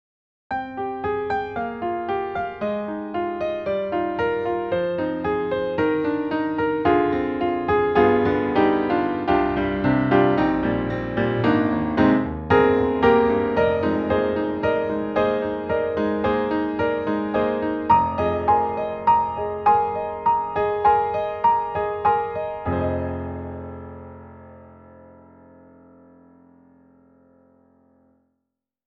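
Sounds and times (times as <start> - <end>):
sampled Steinway piano: 0.5 - 28.3.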